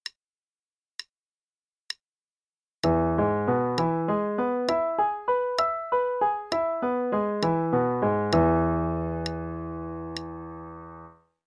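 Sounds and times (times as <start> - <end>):
E major arpeggios: 2.8 - 11.2.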